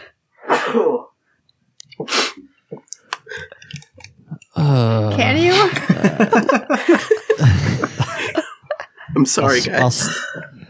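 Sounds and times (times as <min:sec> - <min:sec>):
loud sneeze: 0:00.4 - 0:01.1
speech: 0:00.7 - 0:01.1, 0:02.0 - 0:02.5, 0:04.6 - 0:07.1, 0:09.2 - 0:10.4
laughter: 0:05.4 - 0:10.6.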